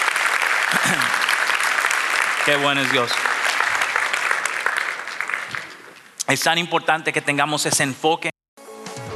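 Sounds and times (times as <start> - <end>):
large audience applauding: 0.0 - 6.1
speech: 0.8 - 1.2, 2.4 - 3.3, 6.3 - 8.3.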